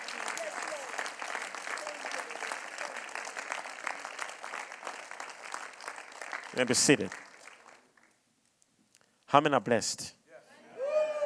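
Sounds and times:
church congregation clapping hands: 0:00.0 - 0:08.2
speech: 0:06.6 - 0:07.2, 0:09.3 - 0:10.2.

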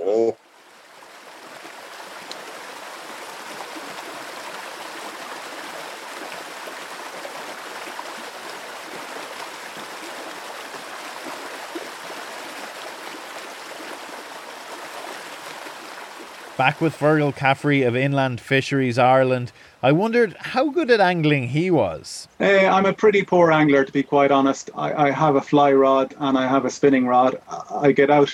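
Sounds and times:
stream water burbling and splashing over stones: 0:00.4 - 0:21.9
speech: 0:16.6 - 0:28.3.

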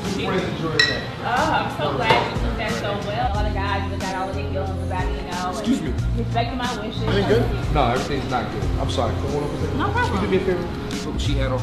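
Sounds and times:
murmur of voices: 0:00.0 - 0:11.6
speech: 0:00.2 - 0:11.6
drinking glasses clinking in a toast: 0:00.8 - 0:01.2.

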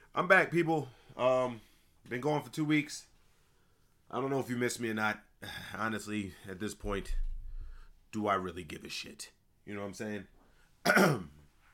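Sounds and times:
speech: 0:00.2 - 0:03.1, 0:04.1 - 0:07.3, 0:08.1 - 0:11.4
raspy throat clearing: 0:10.8 - 0:11.4.

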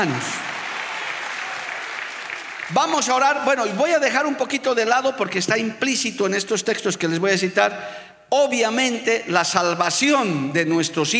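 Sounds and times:
speech: 0:00.0 - 0:00.4, 0:02.7 - 0:11.1
audience applauding: 0:00.0 - 0:04.3.

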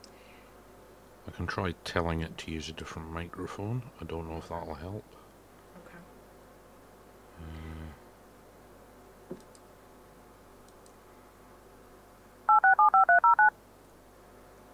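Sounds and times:
faint click: 0:00.0 - 0:00.2, 0:09.4 - 0:09.7, 0:10.6 - 0:11.0
hiss: 0:00.0 - 0:14.7
speech: 0:01.4 - 0:05.2
touch-tone telephone dialing beeps: 0:12.5 - 0:13.5.

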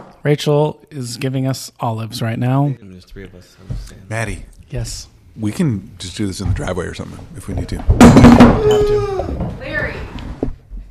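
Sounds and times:
speech: 0:00.2 - 0:10.1
microphone knocked over with a clattering thump: 0:07.6 - 0:09.6.

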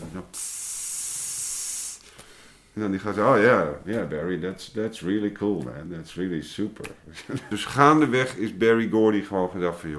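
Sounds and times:
loud static hiss from an electronic device: 0:00.0 - 0:02.9
faint noise: 0:00.0 - 0:09.9
speech: 0:02.8 - 0:09.9
laughter: 0:07.1 - 0:07.8.

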